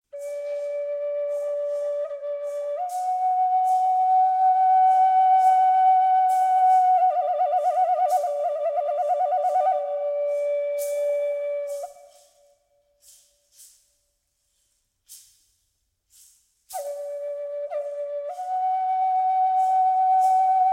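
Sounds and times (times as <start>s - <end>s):
flute phrases: 0.0s - 12.6s, 16.7s - 20.7s.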